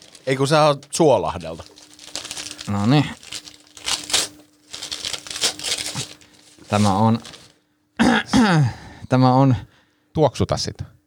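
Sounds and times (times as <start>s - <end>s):
paper crinkling as a package containing a bath bomb is torn open: 0.0s - 7.6s
faint steady hum: 0.0s - 11.0s
speech: 0.2s - 1.8s, 2.6s - 3.2s, 6.7s - 7.4s, 8.1s - 11.0s.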